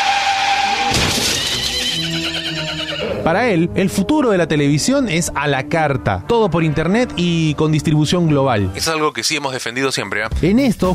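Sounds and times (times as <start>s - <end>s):
horse whinnying: 0.0s - 3.3s
speech: 3.2s - 10.9s.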